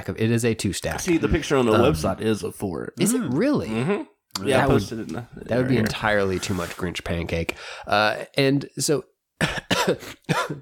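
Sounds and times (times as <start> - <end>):
speech: 0.0 - 10.6
person coughing: 9.4 - 10.6.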